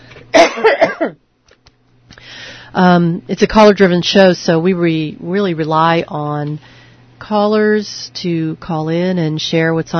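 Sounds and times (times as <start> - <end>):
harsh coughing: 0.3 - 1.2
speech: 0.6 - 1.2, 2.7 - 9.9.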